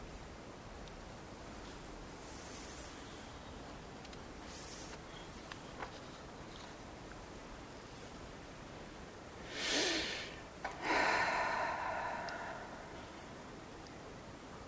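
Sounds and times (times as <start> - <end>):
quiet hiss: 0.0 - 14.6
slow deep breathing: 9.5 - 13.7.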